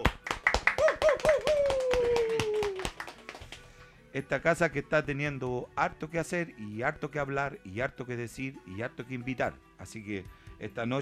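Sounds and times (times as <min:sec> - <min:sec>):
studio audience applause on a TV talk program: 0:00.0 - 0:03.6
person calling out a long, slowly falling cry: 0:00.8 - 0:02.9
speech: 0:04.2 - 0:10.9.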